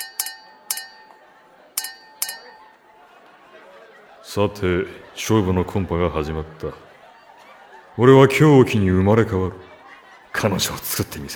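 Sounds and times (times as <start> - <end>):
glasses clinking together in a toast at a group drinking party: 0.0 - 3.6
laughter: 0.0 - 11.3
speech: 4.4 - 6.9, 8.0 - 9.7, 10.4 - 11.3.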